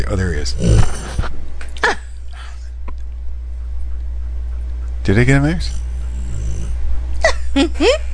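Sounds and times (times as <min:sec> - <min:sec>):
speech: 0:00.0 - 0:02.0, 0:05.0 - 0:05.8, 0:07.6 - 0:08.1
steady low hum: 0:00.0 - 0:08.1
dog grunting: 0:00.4 - 0:01.3, 0:05.3 - 0:07.2.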